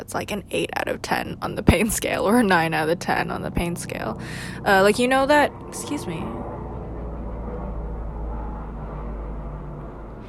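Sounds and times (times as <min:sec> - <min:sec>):
airplane engine roar passing overhead near an airport: 0:00.0 - 0:10.2
speech: 0:00.1 - 0:06.5.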